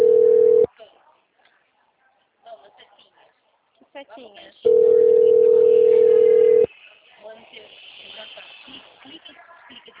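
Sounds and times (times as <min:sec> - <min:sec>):
telephone ringing tone while a call is placed: 0:00.0 - 0:00.7, 0:04.7 - 0:06.7
faint low noise: 0:00.0 - 0:09.9
speech: 0:04.0 - 0:06.0.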